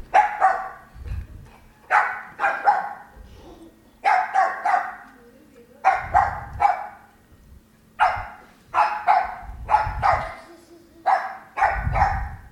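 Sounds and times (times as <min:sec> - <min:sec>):
dog barking and yipping, reacting to a vacuum cleaner: 0:00.1 - 0:00.9, 0:01.9 - 0:03.1, 0:04.0 - 0:05.1, 0:05.9 - 0:07.1, 0:08.0 - 0:10.5, 0:11.0 - 0:12.5.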